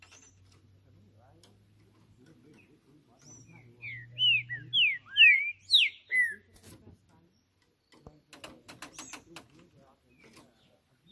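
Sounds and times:
green-winged saltator singing loud whistled phrases on a roof: 3.2 - 6.5.

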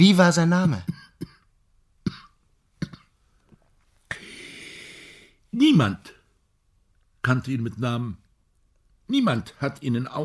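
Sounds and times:
speech: 0.0 - 0.9, 5.6 - 6.2, 7.2 - 8.2, 9.1 - 10.2
man coughing in a violent coughing fit: 0.8 - 1.5, 2.1 - 3.2
man gasping for air: 4.1 - 5.4.

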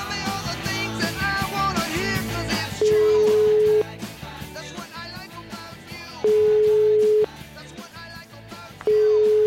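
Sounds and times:
continuous music: 0.0 - 9.4
ringback tone of an outgoing telephone call: 2.8 - 3.9, 6.2 - 7.3, 8.9 - 9.4.

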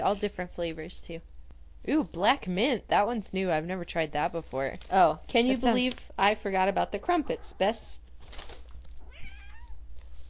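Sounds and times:
speech: 0.0 - 8.6
cat meowing: 9.0 - 9.8.

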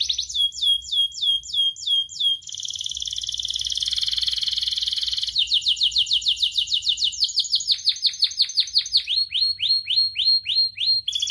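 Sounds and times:
canary singing rich varied song with rolling trill: 0.0 - 11.2.

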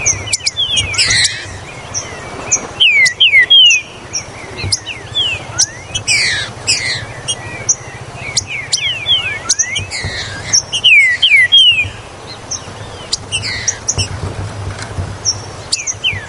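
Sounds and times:
green-winged saltator whistled song: 0.0 - 12.0.

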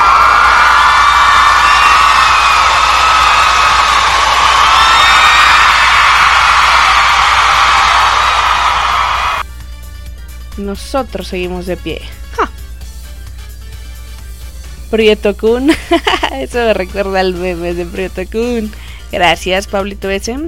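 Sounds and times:
crowd cheering an ovation with whoops and shouts: 0.0 - 9.4
speech: 10.7 - 12.4, 14.9 - 20.4.

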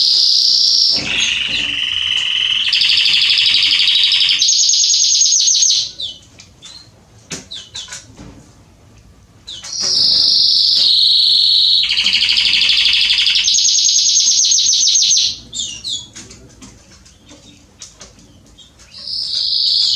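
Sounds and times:
male Belgian canary singing loud continuous rapid trills: 0.0 - 6.2, 9.5 - 16.1
male Belgian canary chirps: 0.0 - 8.0, 9.4 - 16.1, 17.1 - 19.9.

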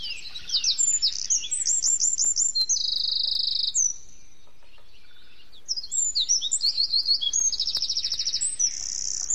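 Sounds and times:
wren songs and calls: 0.0 - 9.3.

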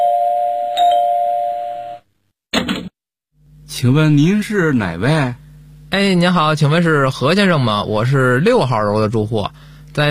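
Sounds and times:
doorbell at a home's front door chiming: 0.0 - 2.0
speech: 3.8 - 10.0.

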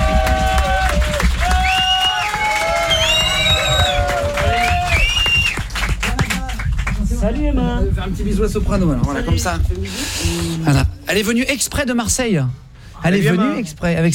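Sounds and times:
people shouting with raised voices: 0.0 - 5.1
audience applauding and cheering at a live radio event: 0.0 - 7.4
speech: 8.0 - 14.1.

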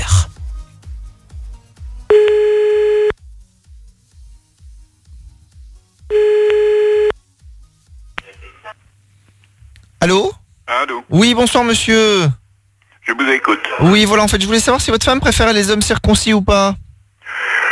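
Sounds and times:
low rhythmic music bed: 0.0 - 8.8
ringback tone of an outgoing telephone call: 2.1 - 3.1, 6.1 - 7.2
speech: 10.0 - 12.4, 13.1 - 16.8.

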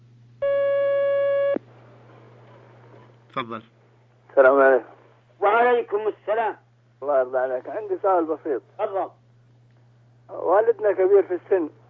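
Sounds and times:
faint low hum: 0.0 - 11.8
telephone tone as a call connects on a phone-in line: 0.4 - 1.6
speech: 3.4 - 3.8, 4.4 - 4.9, 5.8 - 9.2, 10.3 - 11.8.

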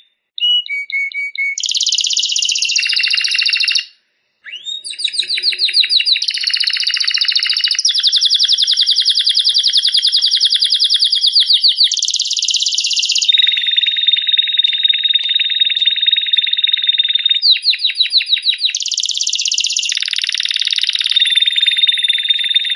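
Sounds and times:
competition canary singing rapid trills: 0.4 - 3.9, 4.5 - 22.7.

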